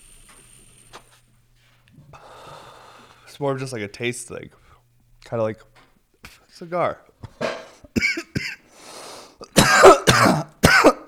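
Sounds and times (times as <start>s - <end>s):
audible intake of breath: 1.6s - 3.3s, 8.7s - 9.4s
speech: 3.4s - 4.6s, 5.3s - 5.8s, 6.6s - 7.1s
person with asthma coughing harshly: 7.9s - 8.6s, 9.4s - 11.0s.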